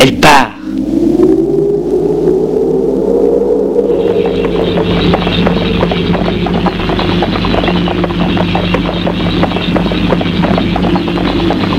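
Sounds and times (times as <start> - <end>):
low droning background: 0.0 - 11.7
saddled horse galloping at night: 4.0 - 11.7.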